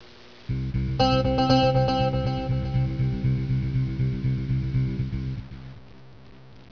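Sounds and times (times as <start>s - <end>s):
guitar with echo: 0.5s - 5.6s.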